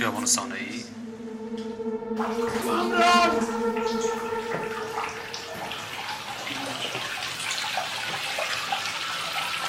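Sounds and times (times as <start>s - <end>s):
speech: 0.0s - 5.2s
brief voice-like gurgle: 2.2s - 9.6s
water running from a tap or into a tub: 3.3s - 9.6s.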